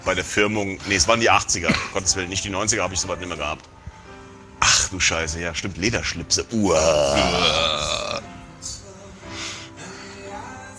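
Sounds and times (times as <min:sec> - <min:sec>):
speech: 0:00.0 - 0:03.8, 0:04.9 - 0:08.0
loud guttural burp: 0:06.6 - 0:08.4.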